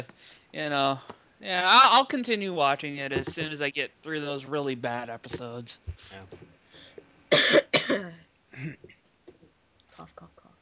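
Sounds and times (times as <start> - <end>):
speech: 0.0 - 6.4, 7.3 - 9.0
person coughing harshly: 7.3 - 9.0
throat clearing: 8.6 - 9.0.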